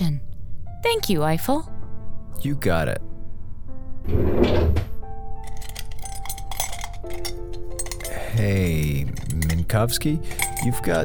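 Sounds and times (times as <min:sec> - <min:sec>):
speech: 0:00.8 - 0:01.7, 0:02.4 - 0:03.1, 0:04.0 - 0:04.6, 0:08.4 - 0:11.0
drawer sliding open with a scraping rush: 0:04.0 - 0:05.6
objects clinking and rattling in a drawer: 0:05.4 - 0:11.0.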